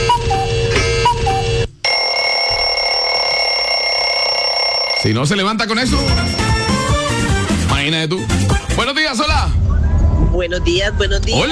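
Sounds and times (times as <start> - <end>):
alarm clock ringing with pulsing electronic pattern and shrill ring: 0.0 - 7.2
speech: 5.0 - 6.6, 7.8 - 9.7, 10.4 - 11.5.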